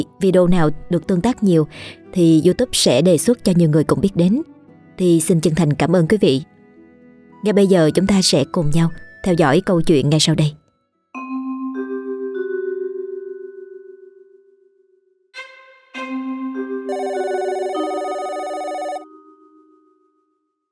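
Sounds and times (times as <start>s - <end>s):
speech: 0.0s - 6.5s, 7.4s - 10.6s
duty telephone ringing at a police station: 16.9s - 19.0s.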